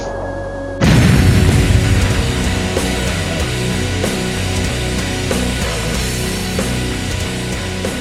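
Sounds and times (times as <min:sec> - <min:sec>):
M20 recoilless rocket launcher blast: 0:00.8 - 0:04.5
heavy sustained rumble: 0:00.8 - 0:07.4.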